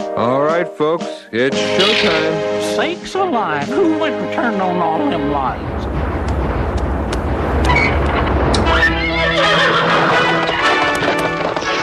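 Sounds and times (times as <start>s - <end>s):
speech: 0.2s - 5.8s
low rumbling: 3.7s - 11.6s
clatter: 5.6s - 11.7s
horse neighing and whinnying: 8.9s - 10.8s.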